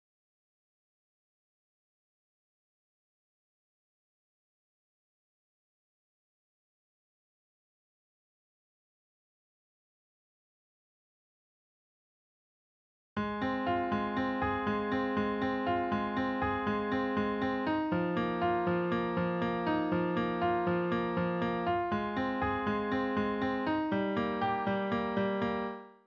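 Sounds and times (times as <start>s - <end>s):
Steinway grand piano: 13.2s - 25.9s.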